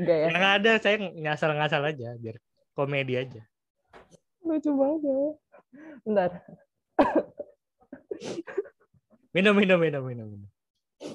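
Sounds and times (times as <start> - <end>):
speech: 0.0 - 7.4, 8.2 - 8.7, 9.3 - 11.1
person coughing: 7.0 - 7.6.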